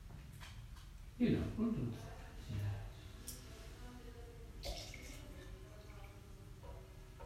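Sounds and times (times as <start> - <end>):
low hum: 0.0 - 7.2
speech: 1.2 - 2.7
small water drops trickling into a tea bowl: 4.6 - 6.2.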